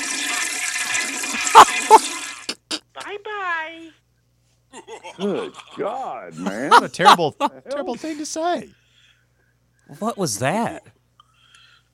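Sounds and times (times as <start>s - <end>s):
toilet flushing with gurgling surges: 0.0s - 2.6s
speech: 5.2s - 8.8s, 9.9s - 11.0s.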